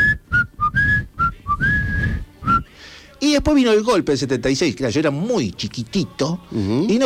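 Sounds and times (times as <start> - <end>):
person whistling a march imitating a parrot: 0.0 - 2.8
speech: 3.2 - 7.0.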